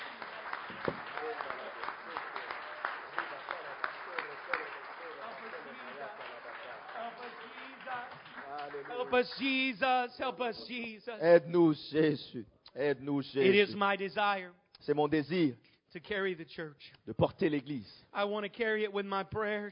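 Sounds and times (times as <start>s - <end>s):
crowd applause: 0.0s - 9.9s
speech: 9.1s - 19.6s.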